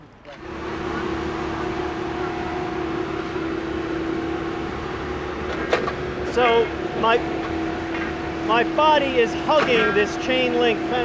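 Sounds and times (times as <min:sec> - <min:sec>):
heavy diesel track machinery placing new railroad ties: 0:00.0 - 0:11.0
sustained tonal whine: 0:00.4 - 0:11.0
speech: 0:06.4 - 0:07.4, 0:08.5 - 0:11.0
brief clank: 0:09.5 - 0:10.2.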